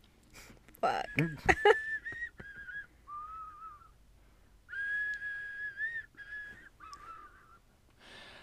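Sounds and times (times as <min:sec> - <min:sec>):
speech: 0:00.8 - 0:01.9
laughter: 0:01.2 - 0:02.8
person whistling a slow wavering melody: 0:01.7 - 0:04.0, 0:04.7 - 0:07.6.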